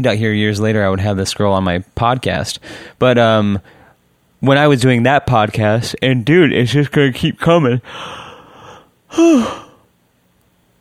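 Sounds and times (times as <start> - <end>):
speech: 0.0 - 3.8, 4.4 - 8.2, 9.1 - 9.6
person yawning: 9.1 - 9.9.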